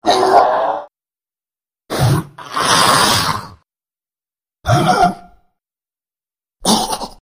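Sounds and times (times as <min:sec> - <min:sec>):
injured zombie groaning: 0:00.0 - 0:00.9, 0:01.9 - 0:03.6, 0:04.6 - 0:05.4.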